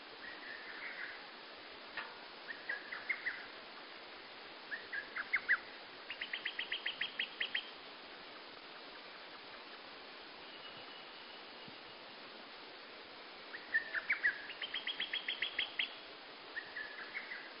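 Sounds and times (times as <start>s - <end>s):
steady hiss: 0.0s - 17.5s
bird singing at dawn: 0.2s - 1.2s, 2.4s - 3.5s, 4.7s - 7.8s, 10.4s - 12.0s, 13.5s - 17.5s.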